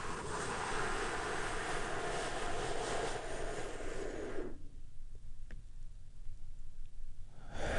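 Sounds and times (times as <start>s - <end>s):
long deep breath drawn in during a guided relaxation exercise: 0.0s - 4.8s, 7.3s - 7.7s.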